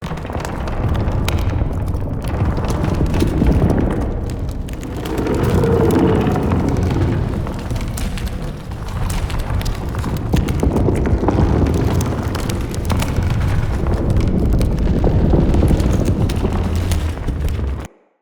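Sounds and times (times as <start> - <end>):
root cave living tunnel ambience: 0.0 - 17.9.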